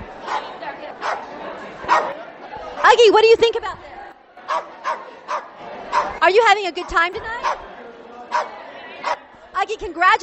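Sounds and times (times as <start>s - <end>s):
crowd noise and murmuring voices: 0.0s - 10.2s
small dog barking: 1.9s - 2.2s, 4.5s - 6.2s, 6.9s - 7.6s
speech: 2.9s - 3.9s, 4.5s - 4.7s, 6.2s - 7.6s, 9.6s - 10.2s.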